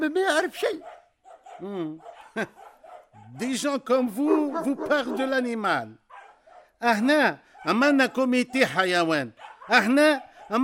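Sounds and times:
speech: 0.0s - 1.0s, 1.6s - 2.6s, 3.3s - 6.0s, 6.8s - 10.6s
dog yelping and barking: 0.8s - 5.4s, 6.1s - 6.8s, 7.4s - 10.6s.

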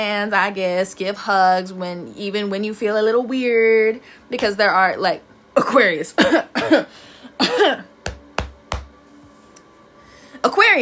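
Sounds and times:
speech: 0.0s - 7.9s, 10.4s - 10.8s
person deliberately fake coughing: 6.2s - 7.9s.

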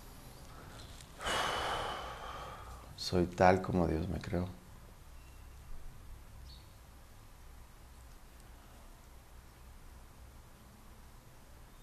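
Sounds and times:
person inhaling deeply during a breathing exercise: 1.2s - 3.0s
speech: 3.0s - 4.6s.

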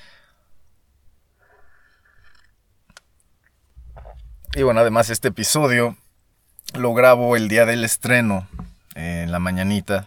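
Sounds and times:
breath: 0.0s - 0.5s, 1.4s - 2.3s
person sipping coffee: 1.4s - 2.6s, 3.4s - 4.6s
low thump: 3.8s - 5.1s, 8.4s - 8.8s
speech: 4.6s - 6.0s, 6.7s - 8.6s, 9.3s - 10.0s.

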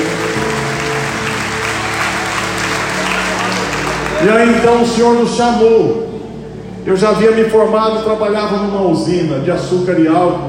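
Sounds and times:
audience applauding at a church service: 0.0s - 5.2s
low hum or organ-like tones: 0.0s - 10.4s
speech: 4.2s - 6.1s, 6.8s - 10.4s.

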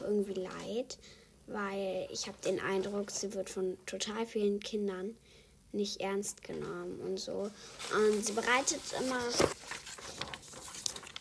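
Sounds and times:
speech: 0.1s - 9.8s
sheet of paper being taken, rustling and crinkling: 7.7s - 11.1s.

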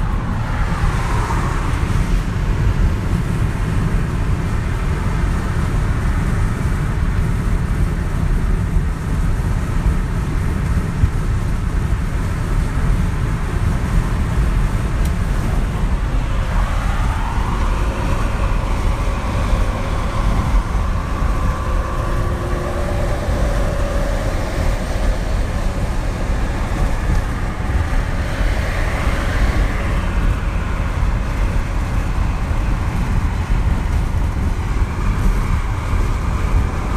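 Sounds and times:
road and engine roar from a car driving down a freeway: 0.0s - 36.9s
faint high tonal whine: 15.8s - 28.2s.

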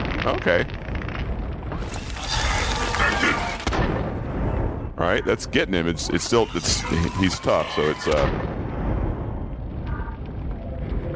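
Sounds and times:
frag grenade explosion in a video game: 0.0s - 5.0s, 7.8s - 11.1s
speech: 0.2s - 0.9s, 1.8s - 4.1s, 5.0s - 8.5s.

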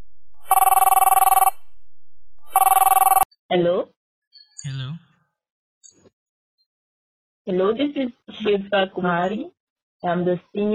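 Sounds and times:
telephone ringing with an electronic trill: 0.4s - 1.6s, 2.5s - 3.2s
speech: 7.5s - 10.7s.

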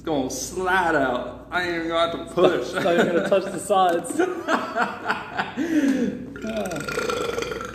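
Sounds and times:
speech: 0.0s - 7.2s
laughter: 2.4s - 6.3s
breathy voice sounds: 5.6s - 7.7s
loud drawn-out burp: 6.4s - 7.7s
rough belch: 6.4s - 7.7s.

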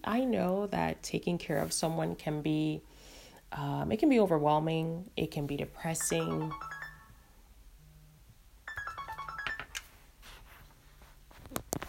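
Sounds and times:
speech: 0.0s - 6.7s
phone ringtone for an incoming call: 6.0s - 7.4s, 8.7s - 10.0s.

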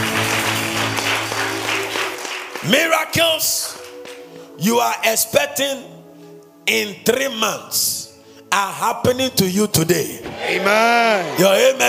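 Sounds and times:
congregation clapping together: 0.0s - 4.4s
speech: 2.6s - 3.7s, 4.6s - 5.9s, 6.7s - 11.8s.

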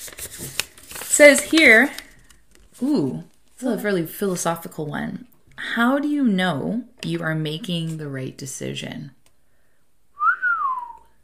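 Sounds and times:
speech: 1.2s - 2.0s, 2.8s - 9.2s
person whistling a single sliding note: 10.2s - 11.2s.

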